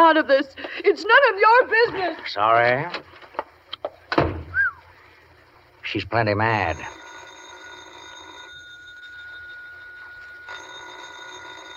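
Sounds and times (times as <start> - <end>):
speech: 0.1 - 3.2, 5.9 - 7.0
telephone bell ringing: 6.6 - 11.7.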